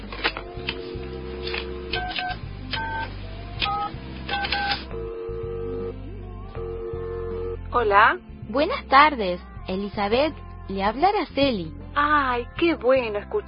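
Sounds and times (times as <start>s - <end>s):
telephone keypad tones as a number is dialed: 0.6s - 5.9s
speech: 7.8s - 13.4s.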